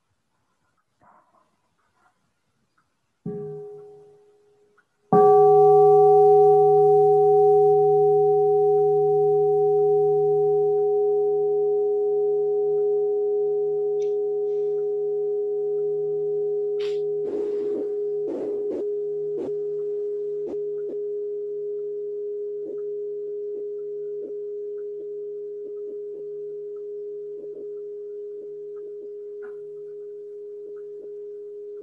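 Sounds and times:
struck meditation bell ringing out: 5.1s - 31.8s
faint rustles: 16.8s - 20.7s.

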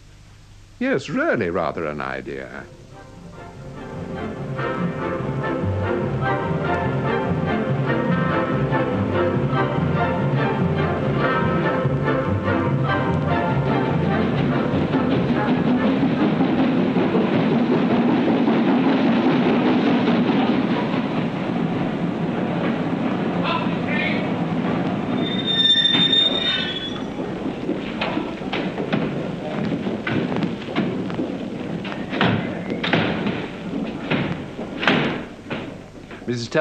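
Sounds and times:
speech: 0.8s - 3.1s, 36.4s - 36.5s
train arriving with a heavy roar: 0.8s - 36.5s
train clanks and thuds: 14.0s - 23.6s, 24.3s - 36.3s
high train wheel squeal: 25.1s - 27.2s.

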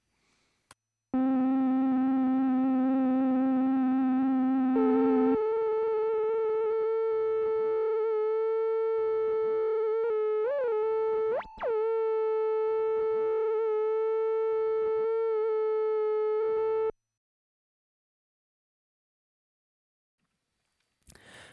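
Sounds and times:
buzzy synthesizer oscillator tone wobbling from LFO-modulated fine tune: 1.2s - 16.9s.

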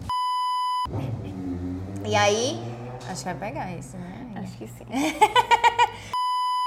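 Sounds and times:
electronic alarm or timer beep: 0.0s - 0.9s, 6.2s - 6.6s
low rumble: 0.9s - 5.5s
speech: 2.0s - 6.2s
laughter: 4.9s - 6.2s.

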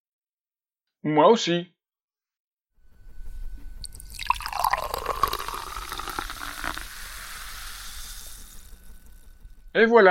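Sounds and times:
speech: 1.0s - 1.7s, 9.8s - 10.0s
champagne being poured into glasses: 3.8s - 9.2s
champagne bubbles fizzing: 3.8s - 9.4s.

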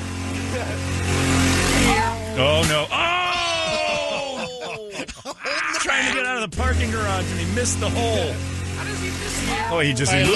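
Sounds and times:
small scooter engine revving: 0.0s - 4.4s, 6.5s - 10.3s
laughter: 0.4s - 1.0s, 2.8s - 6.8s
speech: 5.9s - 10.3s.

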